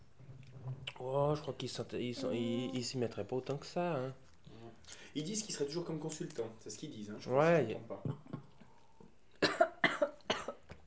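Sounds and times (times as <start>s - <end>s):
speech: 1.0s - 4.2s, 4.9s - 8.3s
person coughing harshly: 9.4s - 10.6s.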